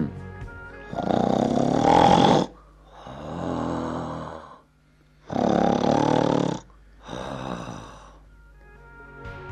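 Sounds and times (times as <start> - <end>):
speech: 0.9 - 1.2
man snoring loudly in his sleep: 0.9 - 8.2.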